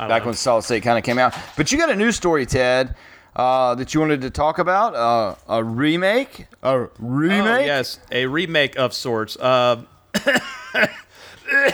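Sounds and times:
speech: 0.0s - 11.7s
harsh coughs from a sick person: 10.1s - 11.7s.

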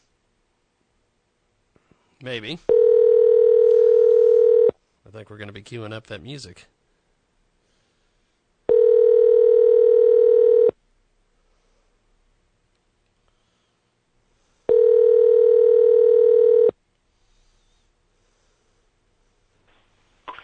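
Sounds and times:
speech: 2.2s - 2.9s, 5.1s - 6.8s
phone line ringing on an outgoing call: 2.7s - 4.7s, 8.7s - 10.8s, 14.7s - 16.8s.

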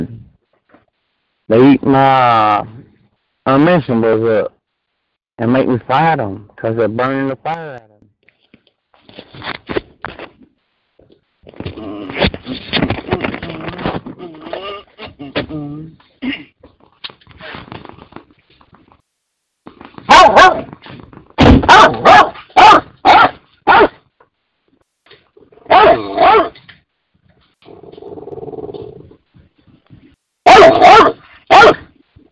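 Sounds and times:
speech: 1.5s - 2.8s, 3.4s - 4.6s, 5.4s - 7.9s
dogs barking in short sharp bursts: 20.1s - 20.7s, 21.6s - 24.0s, 25.7s - 26.6s, 30.5s - 31.9s
low sustained dog growl: 27.6s - 29.2s.

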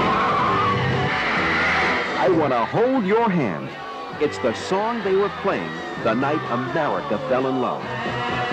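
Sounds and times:
car tires screeching in a skid to a stop: 0.0s - 2.8s
speech: 2.3s - 8.4s.

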